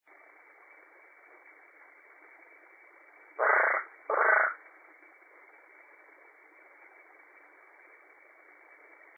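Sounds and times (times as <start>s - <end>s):
Smilisca cyanostica calling: 3.4s - 4.6s.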